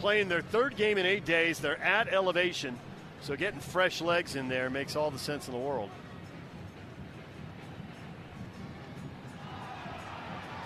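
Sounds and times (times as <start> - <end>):
speech: 0.0 - 6.0
large stadium crowd booing at a soccer match: 9.4 - 10.6.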